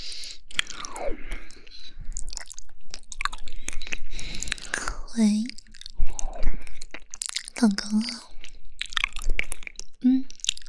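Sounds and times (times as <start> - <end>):
wet mouth clicks: 0.0 - 10.6
crunchy chewing of cold-dressed pig ear salad: 0.3 - 4.9, 5.5 - 10.6
speech: 5.2 - 5.6, 7.6 - 8.2.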